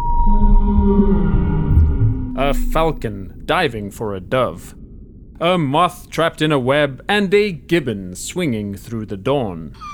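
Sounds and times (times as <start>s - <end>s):
long moaning whale call over a deep rumbling low end: 0.0s - 2.3s, 9.8s - 9.9s
speech: 2.4s - 4.8s, 5.4s - 9.9s.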